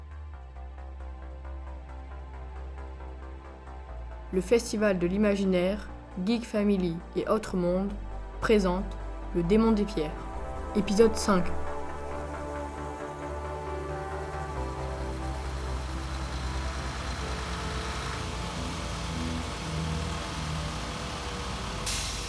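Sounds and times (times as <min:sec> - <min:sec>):
speech: 0:04.3 - 0:11.7
large bus engine idling: 0:10.2 - 0:22.2
air brake or door release hiss: 0:21.8 - 0:22.2.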